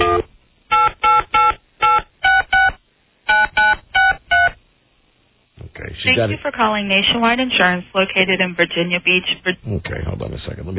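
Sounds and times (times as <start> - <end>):
telephone keypad dialing tones: 0.0 - 4.6
speech: 6.2 - 10.7.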